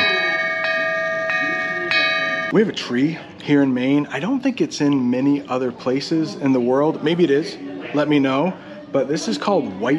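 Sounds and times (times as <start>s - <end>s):
wind chime ringing: 0.0s - 2.6s
speech: 2.5s - 9.9s.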